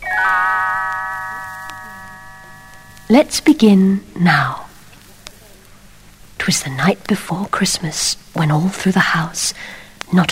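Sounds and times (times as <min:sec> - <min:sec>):
little bells chiming as a page-turn signal: 0:00.0 - 0:03.1
speech: 0:03.1 - 0:04.6, 0:06.4 - 0:10.3.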